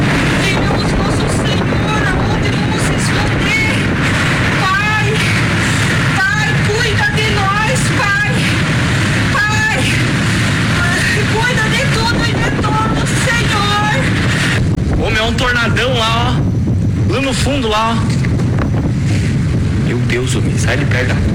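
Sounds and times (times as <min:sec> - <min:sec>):
tornado winds roaring and buffeting the microphone in Giruá: 0:00.0 - 0:21.3
speech: 0:20.4 - 0:21.3.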